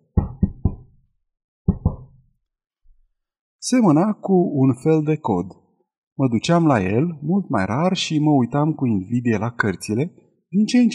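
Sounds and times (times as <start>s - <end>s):
sharp knocks on a door: 0.1s - 1.0s, 1.7s - 2.2s
speech: 3.6s - 5.6s, 6.2s - 10.9s.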